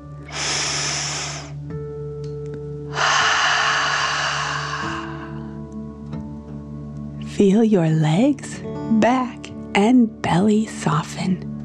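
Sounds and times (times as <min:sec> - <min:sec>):
forceful breath pushed out through the mouth with a hissing rush: 0:00.3 - 0:01.6, 0:02.9 - 0:05.6
slow breath drawn in: 0:00.3 - 0:01.6, 0:02.9 - 0:05.6
speech: 0:07.4 - 0:11.5.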